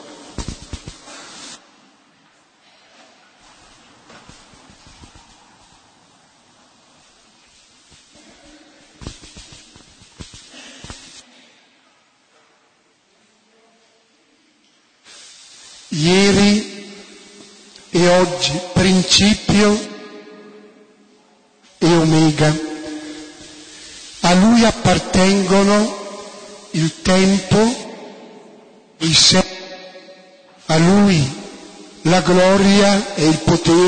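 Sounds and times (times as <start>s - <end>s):
fire hissing as a candle is lit from the new fire: 0.1s - 1.6s, 3.4s - 11.2s, 15.0s - 19.8s, 21.9s - 27.8s
speech: 16.0s - 16.6s, 18.1s - 19.9s, 22.1s - 22.7s, 24.3s - 26.0s, 26.8s - 27.8s, 29.0s - 29.4s, 30.8s - 31.4s, 32.0s - 33.8s.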